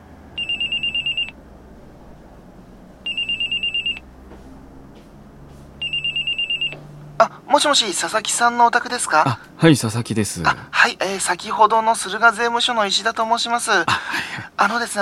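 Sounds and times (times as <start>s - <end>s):
low hum: 0.0s - 14.9s
home telephone ringing with trilling bell tones: 0.4s - 1.4s, 3.0s - 4.1s, 5.8s - 6.8s
speech: 7.2s - 14.9s.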